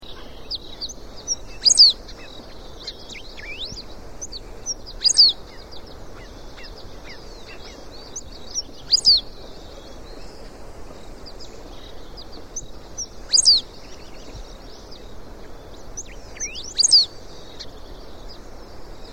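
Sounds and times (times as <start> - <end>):
Embernagra platensis calling: 0.0 - 19.1.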